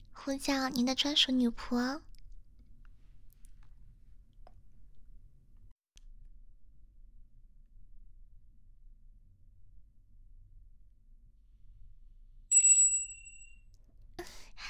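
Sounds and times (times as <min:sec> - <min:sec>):
speech: 0:00.2 - 0:02.1
small bell rung on a table: 0:12.5 - 0:13.6.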